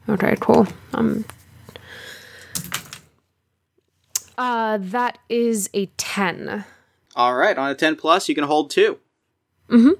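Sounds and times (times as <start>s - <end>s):
speech: 0.1s - 1.4s, 4.4s - 9.0s, 9.7s - 9.9s
dice rolled on a tabletop: 2.6s - 3.1s.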